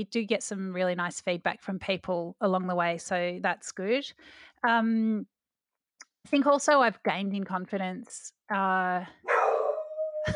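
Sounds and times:
speech: 0.0 - 5.3, 6.2 - 9.3
dog barking and yelping: 9.2 - 10.0.

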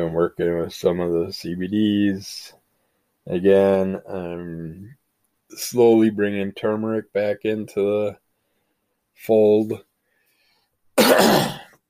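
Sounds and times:
speech: 0.0 - 2.6, 3.2 - 8.2, 9.2 - 9.9, 11.0 - 11.6
harsh rasping cough: 11.0 - 11.8.

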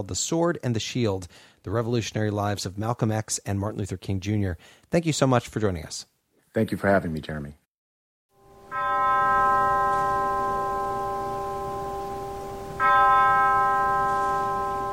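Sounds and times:
speech: 0.0 - 7.6
church bell tolling at a funeral: 8.4 - 14.9.

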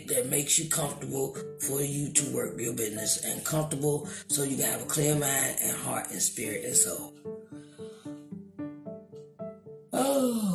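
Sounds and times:
speech: 0.1 - 7.6, 10.1 - 10.5
person yawning: 10.0 - 10.5.

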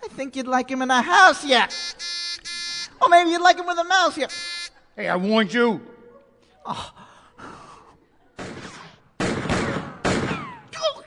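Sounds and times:
speech: 0.2 - 2.2, 3.0 - 4.4, 5.0 - 5.9, 6.6 - 7.0
gunshots in a comedic skit: 8.4 - 10.7.

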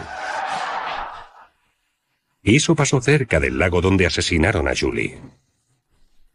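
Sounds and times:
car tires skidding on pavement in near collision: 0.0 - 1.5
speech: 2.4 - 5.4.

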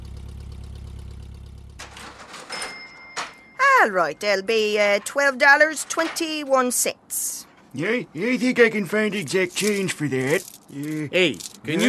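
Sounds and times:
car engine idling: 0.0 - 2.3
rustling clattering noise: 1.8 - 3.5, 4.2 - 7.8, 9.1 - 11.7
speech: 3.8 - 11.8.

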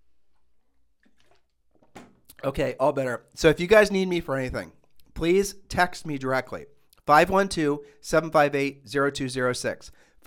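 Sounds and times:
sipping and swallowing water: 0.7 - 2.4
speech: 2.4 - 10.2.

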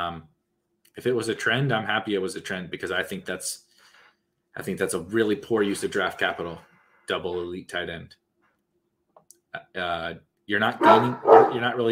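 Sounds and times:
speech: 0.0 - 0.3, 1.0 - 3.7, 4.6 - 8.2, 9.5 - 11.9
dogs barking: 10.8 - 11.9.

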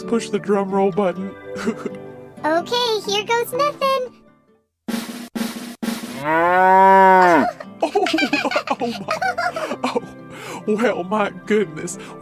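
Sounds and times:
speech: 0.0 - 4.2, 6.2 - 12.2
short punchy bursts: 4.9 - 6.2
cow mooing: 6.1 - 7.6
laughter: 7.3 - 10.2.

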